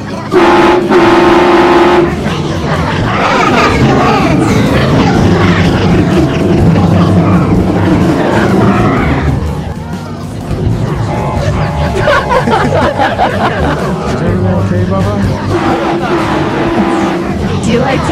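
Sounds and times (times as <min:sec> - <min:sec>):
steady rumbling, clattering train noise: 0:00.0 - 0:18.0
loud train horn blasts: 0:00.3 - 0:02.2, 0:15.5 - 0:17.4
laughter: 0:01.8 - 0:09.7, 0:11.0 - 0:18.0.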